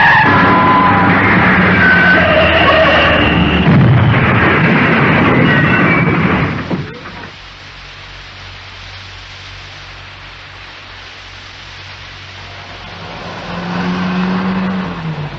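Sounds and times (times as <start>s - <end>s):
old worn-out car skidding out of control: 0.0s - 6.6s, 12.6s - 15.3s
car crash: 0.0s - 7.4s.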